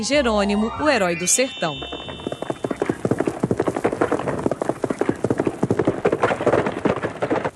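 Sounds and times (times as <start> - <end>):
speech: 0.0 - 2.4
galloping horse sound effect hoofbeats: 1.9 - 7.5.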